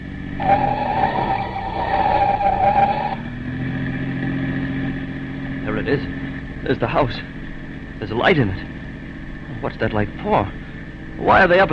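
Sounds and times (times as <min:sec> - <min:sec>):
police car tires squealing as it skids through a turn: 0:00.0 - 0:06.4
police car engine roaring at high speed at full throttle: 0:00.0 - 0:11.7
speech: 0:06.7 - 0:07.4, 0:08.0 - 0:08.7, 0:09.6 - 0:10.6, 0:11.2 - 0:11.7.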